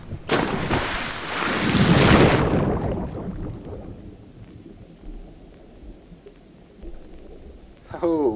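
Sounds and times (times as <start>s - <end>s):
low churning bubbly rumble of water: 0.0s - 8.3s
splash of someone jumping into water: 0.3s - 3.0s.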